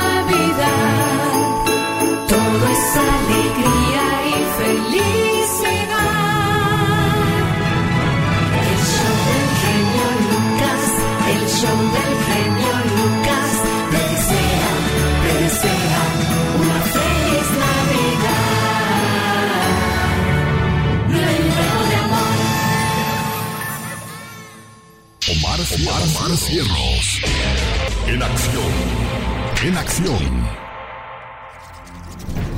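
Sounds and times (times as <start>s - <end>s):
bells chiming: 0.0s - 6.4s, 9.0s - 20.4s, 21.2s - 25.2s
loud steady musical backing: 0.0s - 30.6s
speech: 30.0s - 30.6s.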